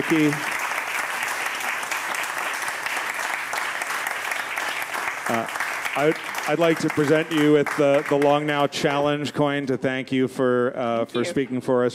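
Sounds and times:
large crowd applauding: 0.0 - 9.0
speech: 0.1 - 0.5, 5.3 - 11.9.

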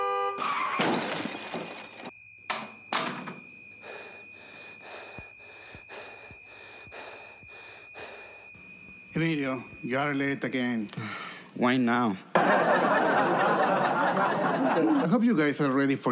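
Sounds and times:
car crash hitting a person: 0.4 - 2.2
shattering breaking debris: 0.4 - 2.2
rhythmic gasping pulses: 3.6 - 10.0
speech: 9.2 - 13.5, 14.5 - 16.1
laughter: 12.3 - 15.6.

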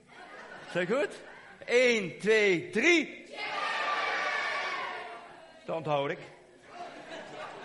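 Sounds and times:
laughter: 0.0 - 1.7, 6.6 - 7.6
speech: 0.7 - 3.4, 5.7 - 6.4
audience in a full hall shouting their names at once: 3.3 - 5.5.

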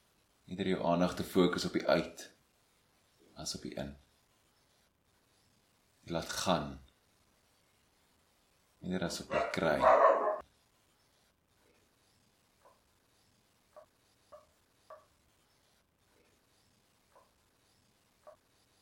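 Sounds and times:
speech: 0.5 - 2.4, 3.4 - 4.0, 6.1 - 6.8, 8.8 - 10.1
dogs barking outside: 9.3 - 10.4.

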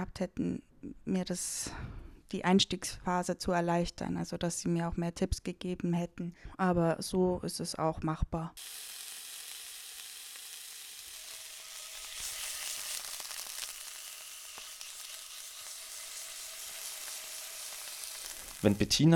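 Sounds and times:
speech: 0.0 - 9.0, 18.6 - 19.1
food sizzling in a hot pan: 8.6 - 19.1.

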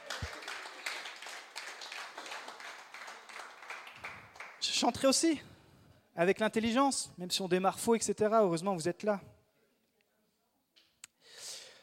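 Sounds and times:
crowd clapping: 0.0 - 5.1
speech: 4.8 - 5.5, 6.2 - 9.3.

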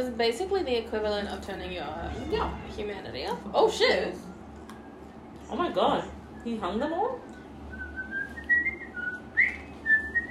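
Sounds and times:
speech: 0.0 - 4.3, 5.5 - 7.4
low steady hum: 0.0 - 10.3
person whistling a bouncy nursery-rhyme melody: 7.7 - 10.3.

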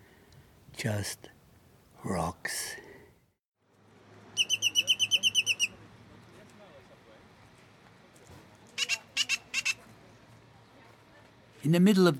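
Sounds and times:
speech: 0.8 - 1.4, 2.0 - 2.8, 11.6 - 12.1
black bird calling at a man-made oasis in Death Valley California: 4.4 - 5.8.

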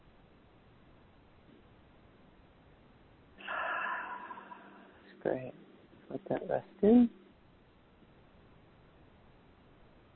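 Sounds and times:
big breath taken in during a guided relaxation session: 3.4 - 5.1
speech: 5.2 - 7.2.

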